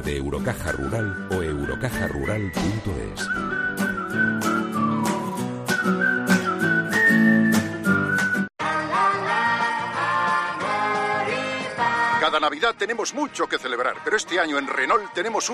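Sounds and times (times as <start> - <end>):
speech: 0.0 - 4.6, 12.4 - 15.5
upbeat backing music with light percussion: 0.0 - 15.5
person whistling a bright steady tune: 0.6 - 8.5.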